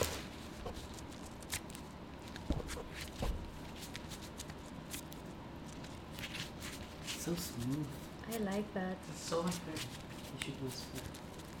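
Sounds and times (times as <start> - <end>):
playing cards being shuffled: 0.0 - 11.5
speech: 7.2 - 11.2.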